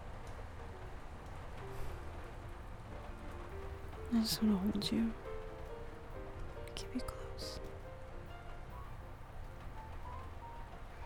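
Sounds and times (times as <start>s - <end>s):
soft steady rain pattering: 0.0s - 11.0s
speech: 4.1s - 5.3s.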